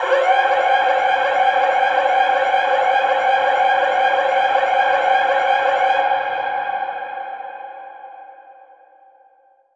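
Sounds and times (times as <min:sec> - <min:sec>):
alarm siren with echo processing: 0:00.0 - 0:06.9.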